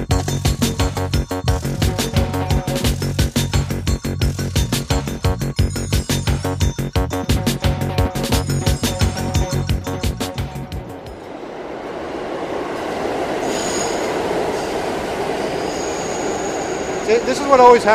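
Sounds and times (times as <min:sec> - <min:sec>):
subway train arriving on a track: 0:00.0 - 0:05.4, 0:06.4 - 0:17.9
faint high squeals: 0:12.9 - 0:17.9
speech: 0:17.5 - 0:17.9.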